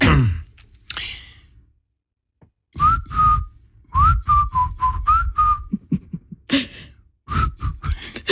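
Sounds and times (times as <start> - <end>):
audible breaths: 0.9 - 1.7, 6.5 - 8.3
person whistling a pop song melody: 2.8 - 5.8, 7.3 - 8.0
soft huffs of laughter: 5.7 - 6.9.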